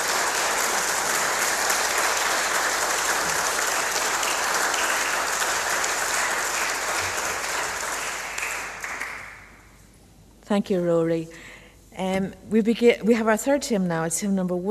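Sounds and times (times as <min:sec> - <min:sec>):
church audience applauding: 0:00.0 - 0:09.6
speech: 0:10.5 - 0:14.7.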